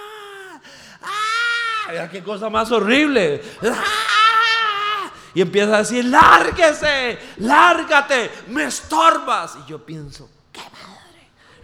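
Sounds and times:
man imitating a woman screaming: 0.0s - 5.2s, 6.1s - 8.1s
man's quieter breathy lead-in: 0.1s - 1.1s, 3.4s - 3.8s
speech: 1.9s - 4.1s, 5.3s - 10.4s.

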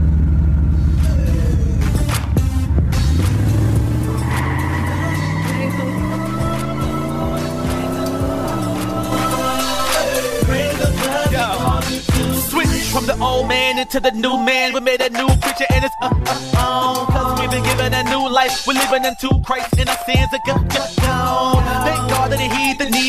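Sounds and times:
car engine cranked and revving: 0.0s - 12.6s
speech: 13.8s - 23.0s.

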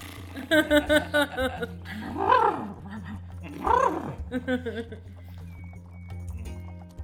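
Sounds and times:
laughter: 0.4s - 5.2s
person's voice imitating a horse: 2.0s - 4.4s.

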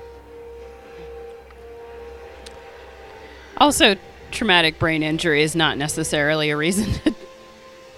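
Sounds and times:
eerie film score music of glass harmonica and electric saw: 0.0s - 7.9s
faint low drone: 0.0s - 7.9s
speech: 3.6s - 7.2s
laughter: 6.7s - 7.3s.

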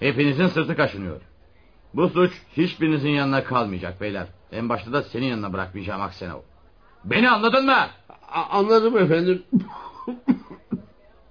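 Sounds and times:
speech: 0.0s - 1.3s, 1.9s - 10.4s
harsh chesty coughs from a person with a persistent cough: 9.6s - 10.9s.

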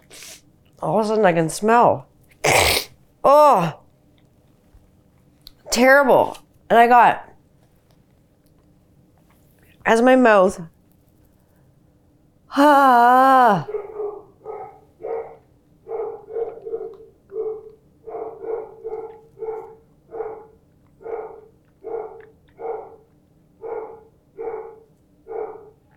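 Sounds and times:
speech: 0.8s - 2.1s, 3.2s - 3.8s, 5.8s - 7.3s, 9.8s - 10.7s, 12.5s - 13.8s
dog barking: 13.7s - 25.9s.

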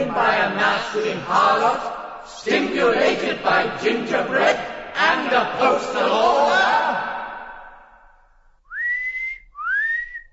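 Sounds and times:
speech: 0.1s - 7.1s
loud sharp rising human whistles: 8.7s - 10.3s.

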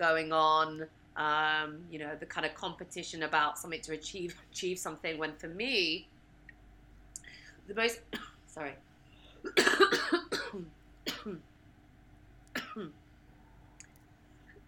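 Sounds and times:
speech: 0.0s - 6.2s, 7.7s - 11.5s, 12.8s - 13.0s
person clearing throat from a tickle in the throat: 9.4s - 11.4s, 12.6s - 13.0s
person coughing from a tickle in the throat: 9.4s - 11.4s, 12.6s - 13.0s.

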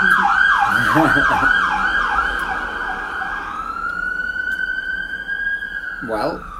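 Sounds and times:
passing emergency vehicle siren: 0.0s - 6.5s
laughter: 0.7s - 2.0s.

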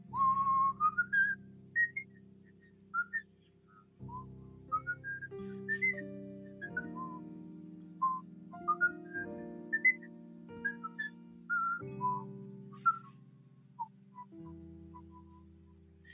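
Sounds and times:
soft sustained low musical backing: 0.0s - 16.1s
person whistling a wandering melodic tune: 0.1s - 7.3s, 8.0s - 13.2s, 13.8s - 15.5s.

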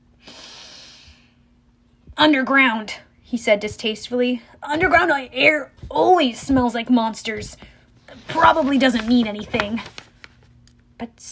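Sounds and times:
quiet hum: 0.0s - 11.3s
voice imitating a sniff through the nose: 0.2s - 1.2s
speech: 2.2s - 10.0s, 11.0s - 11.3s.

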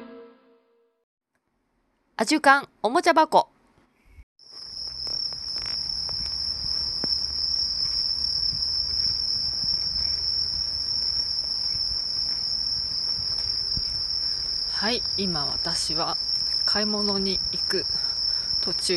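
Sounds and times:
speech: 2.2s - 3.5s, 14.9s - 18.9s
bell crickets chirping in a park: 4.4s - 18.9s.

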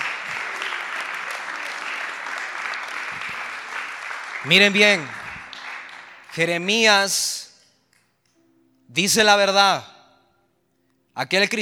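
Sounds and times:
large crowd applauding: 0.0s - 6.9s
speech: 4.4s - 5.2s, 6.4s - 7.4s, 8.9s - 9.9s, 11.2s - 11.6s.

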